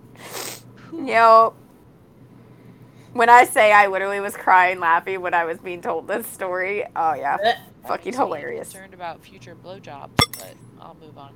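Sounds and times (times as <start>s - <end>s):
speech: 1.0s - 1.6s, 3.2s - 11.3s
small sword dropping: 10.2s - 10.5s.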